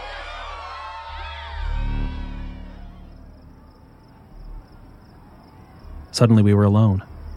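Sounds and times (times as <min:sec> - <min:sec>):
muffled crowd shouting and cheering outside in a parking lot: 0:00.0 - 0:03.2
traffic: 0:00.0 - 0:07.3
wind: 0:01.1 - 0:07.3
speech: 0:06.2 - 0:07.1.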